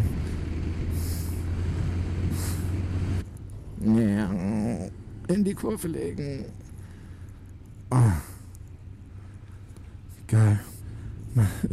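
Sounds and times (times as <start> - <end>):
vehicle engine roar accelerating to overtake a truck on a country road: 0.0 - 5.4
speech: 5.3 - 6.6, 7.9 - 8.3.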